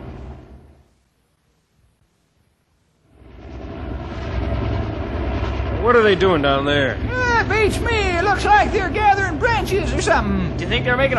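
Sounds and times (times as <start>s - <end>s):
hovering helicopter engine and rotor roar: 3.2s - 11.1s
speech: 5.9s - 11.1s.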